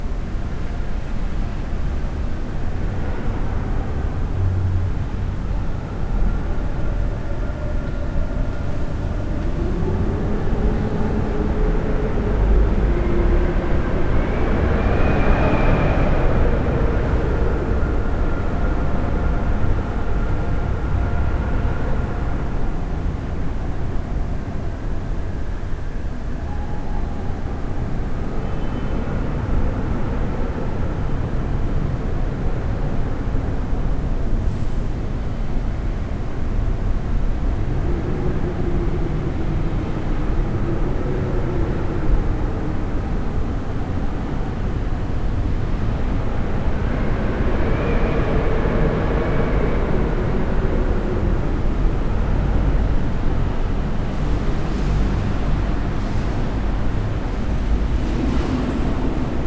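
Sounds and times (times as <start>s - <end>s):
rustling vehicle traffic at a cathedral: 0.0s - 24.4s, 27.2s - 59.4s
howling wind at a cathedral: 0.0s - 59.4s.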